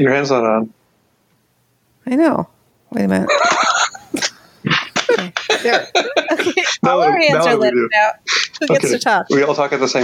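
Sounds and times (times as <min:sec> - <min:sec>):
speech: 0:00.0 - 0:00.8, 0:02.0 - 0:03.5, 0:05.6 - 0:10.0
laughter: 0:03.3 - 0:07.5
sneezing with quick follow-up puffs: 0:03.6 - 0:06.8.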